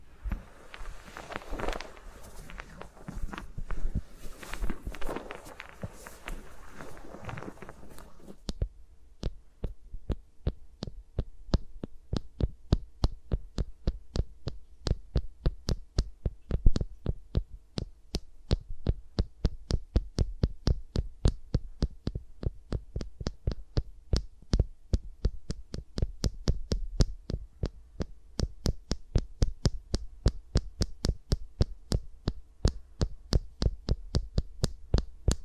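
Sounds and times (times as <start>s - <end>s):
fingers rubbing and rustling against a microphone: 0.2s - 35.4s
rapid crisp tapping clicks: 0.2s - 35.4s.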